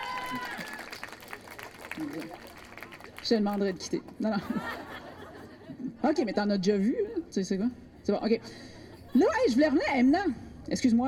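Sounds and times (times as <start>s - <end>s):
audience clapping: 0.0s - 3.8s
speech: 0.3s - 0.7s, 2.0s - 2.5s, 3.2s - 4.9s, 6.0s - 11.0s
laughter: 4.2s - 7.3s.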